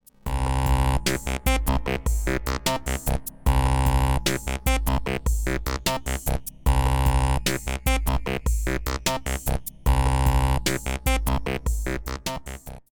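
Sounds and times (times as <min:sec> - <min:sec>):
wavetable oscillator tone: 0:00.3 - 0:12.8.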